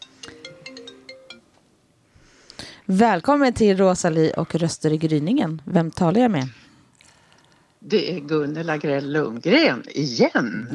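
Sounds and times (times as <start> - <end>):
phone ringtone melody of bright electronic notes: 0.0 - 1.5
speech: 2.9 - 6.6, 7.8 - 10.7.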